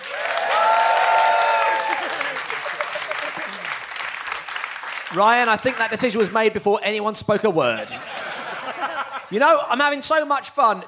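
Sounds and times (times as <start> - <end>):
people whooping: 0.0 - 3.7
audience applause: 0.0 - 6.4
laughter: 1.9 - 3.9, 7.6 - 9.7
speech: 5.1 - 8.2, 8.8 - 10.8.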